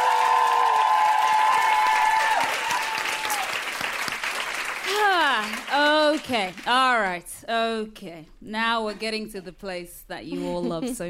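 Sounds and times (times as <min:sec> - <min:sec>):
whoops and cheers: 0:00.0 - 0:03.7
crowd applause: 0:00.0 - 0:06.7
speech: 0:06.2 - 0:11.0.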